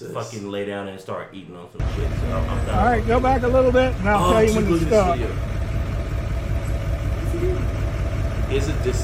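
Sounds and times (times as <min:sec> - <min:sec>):
speech: 0:00.0 - 0:05.6, 0:08.5 - 0:09.0
lifted truck engine idling: 0:01.8 - 0:09.0.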